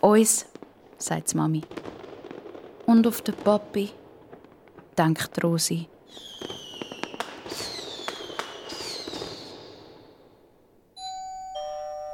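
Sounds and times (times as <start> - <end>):
speech: 0.0 - 2.0, 2.9 - 4.0, 5.0 - 6.5
fireworks crackling, popping and whistling: 0.3 - 5.1, 5.7 - 10.4
two-note doorbell chime: 11.0 - 12.1.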